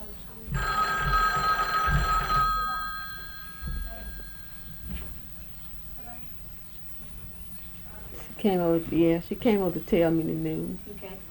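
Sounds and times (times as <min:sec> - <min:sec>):
telephone bell ringing in a buzzing burst: 0:00.5 - 0:05.9
speech: 0:08.4 - 0:11.3.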